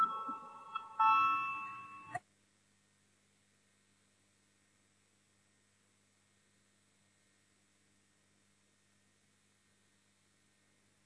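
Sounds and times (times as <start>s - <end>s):
two-tone electronic voting call bell chime in a parliament session: 0.0s - 2.2s.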